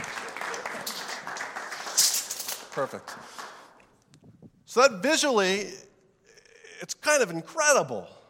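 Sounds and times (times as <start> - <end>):
audience applause: 0.0 - 3.7
speech: 2.8 - 3.4, 4.7 - 5.9, 6.8 - 8.2.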